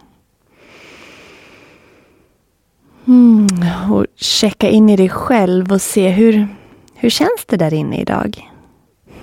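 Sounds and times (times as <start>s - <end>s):
long deep breath drawn in through the nose: 0.0s - 2.4s, 9.0s - 9.2s
speech: 3.1s - 8.5s.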